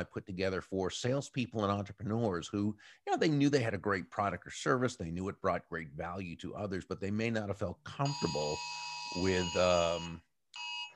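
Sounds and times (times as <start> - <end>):
speech: 0.0 - 10.3
phone public safety alert tone: 8.1 - 10.9.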